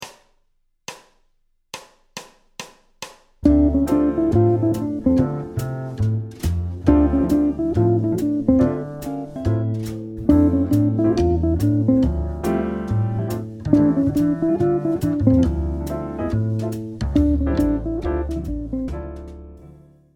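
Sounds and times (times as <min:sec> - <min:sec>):
jazz guitar phrase over a D minor seventh chord: 0:03.4 - 0:19.5.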